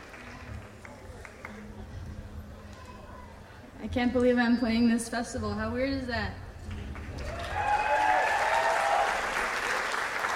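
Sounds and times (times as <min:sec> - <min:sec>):
room full of people clapping and cheering: 0:00.0 - 0:01.9, 0:06.6 - 0:10.3
speech: 0:03.8 - 0:06.4
whoops: 0:07.2 - 0:09.4.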